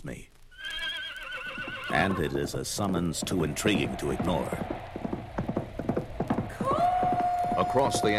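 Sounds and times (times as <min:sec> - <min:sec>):
horse galloping across a wasteland: 0:01.3 - 0:08.1
speech: 0:02.0 - 0:04.8, 0:07.7 - 0:08.1
high tonal wind-like moan: 0:02.3 - 0:08.1.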